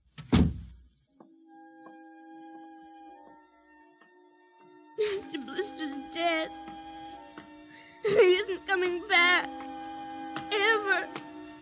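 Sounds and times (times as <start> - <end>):
kitchen door shutting with a heavy thud: 0.2 - 0.8
speech: 5.3 - 6.7, 8.1 - 9.6, 10.6 - 11.2.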